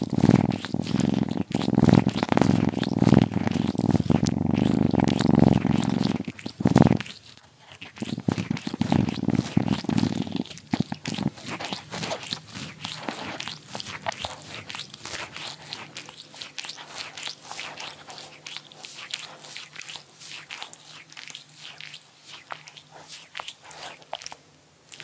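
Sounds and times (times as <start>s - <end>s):
kitten purring: 0.0s - 18.2s
small rustles: 0.0s - 20.6s
kitten licking: 0.0s - 25.0s.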